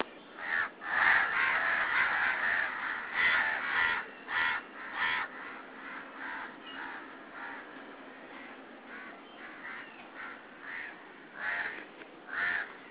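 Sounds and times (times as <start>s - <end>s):
crow giving harsh raspy caws: 0.4s - 12.8s.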